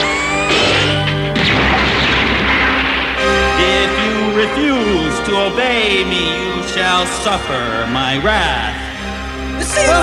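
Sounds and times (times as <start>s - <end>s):
heavy stone column crashing to the ground: 0.5s - 5.4s
speech: 5.5s - 8.8s, 9.8s - 10.0s.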